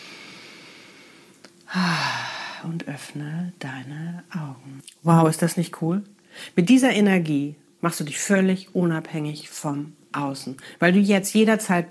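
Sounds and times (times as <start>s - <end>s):
deep exhale pushed out through the mouth: 0.0s - 2.6s
speech: 1.7s - 11.8s.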